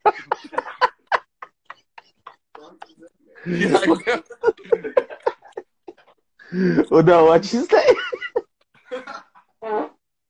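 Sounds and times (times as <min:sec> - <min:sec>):
laughter: 0:00.0 - 0:09.5
speech: 0:03.4 - 0:04.3, 0:06.6 - 0:08.0
sputtering fart noises: 0:09.6 - 0:10.1.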